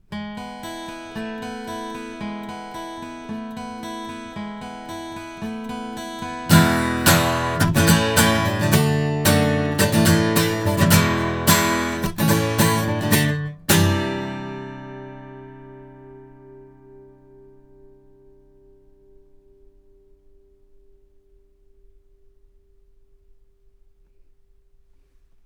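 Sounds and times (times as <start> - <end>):
guitar recorded with cardioid microphones: 0.0 - 24.1.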